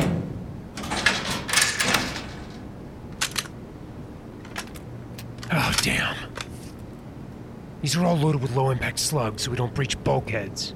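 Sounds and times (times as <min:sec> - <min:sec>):
weapons locker being unlocked and opened aboard a station: 0:00.0 - 0:03.6, 0:04.4 - 0:06.5
steady low noise: 0:00.0 - 0:10.7
speech: 0:07.8 - 0:10.7.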